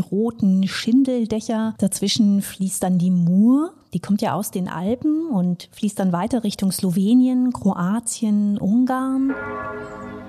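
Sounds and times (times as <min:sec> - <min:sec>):
speech: 0:00.0 - 0:10.1
large clock tower bells ringing: 0:09.1 - 0:10.2.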